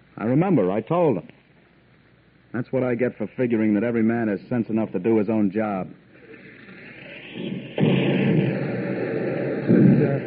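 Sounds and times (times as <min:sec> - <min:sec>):
speech: 0:00.2 - 0:01.4, 0:02.5 - 0:06.0
mortar fire in a military setting: 0:06.2 - 0:10.2.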